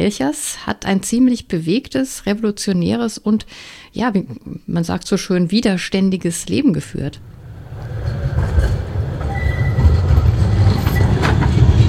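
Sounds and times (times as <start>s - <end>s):
speech: 0.0s - 7.4s
tram rumbling past at a stop by the Pfeifferbrücke: 7.1s - 11.8s
faint metallic squeals and clicks of a tram: 7.9s - 11.6s.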